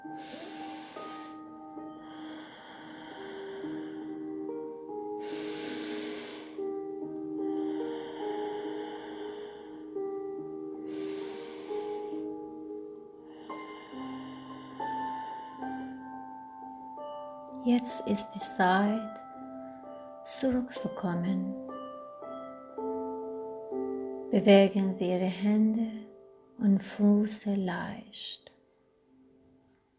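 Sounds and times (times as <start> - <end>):
slow deep breathing in and out: 0.0 - 16.8
soft sustained tonal music: 0.0 - 29.9
speech: 17.7 - 19.2, 20.3 - 21.6, 24.4 - 26.0, 26.6 - 28.5.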